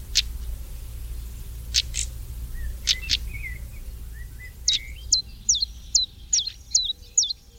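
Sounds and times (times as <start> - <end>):
low steady rumble: 0.0 - 7.5
European stonechat calling: 1.7 - 7.5.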